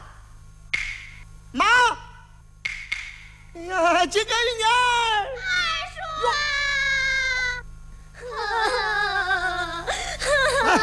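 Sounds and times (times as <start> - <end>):
steady low hum: 0.0 - 10.8
speech: 1.5 - 1.8, 3.6 - 5.5
person crying in high wavering tearful wails: 5.4 - 7.6, 8.2 - 10.8.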